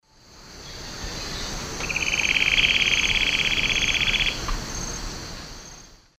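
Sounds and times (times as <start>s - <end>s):
male Conopophaga aurita singing in eastern lowlands of South America: 0.6s - 4.6s.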